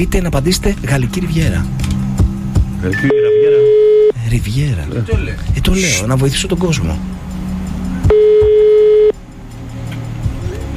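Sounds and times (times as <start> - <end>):
speech: 0.0 - 2.0, 2.8 - 3.1, 4.3 - 7.2
mobile phone call ringing tone: 3.0 - 4.1, 8.1 - 9.1.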